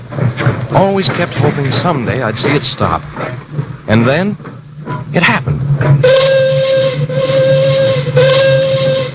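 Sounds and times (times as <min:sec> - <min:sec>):
steam hissing from locomotive whistle: 0:00.0 - 0:09.1
speech: 0:00.7 - 0:06.4
steam locomotive whistle: 0:06.0 - 0:09.1.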